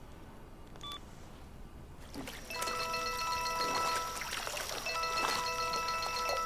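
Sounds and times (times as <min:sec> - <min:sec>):
telephone ringing with electronic warble: 0:02.5 - 0:06.4.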